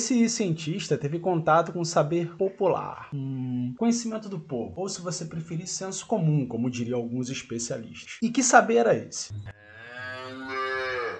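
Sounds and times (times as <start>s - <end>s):
speech: 0.0s - 9.7s
cow mooing: 9.5s - 11.1s.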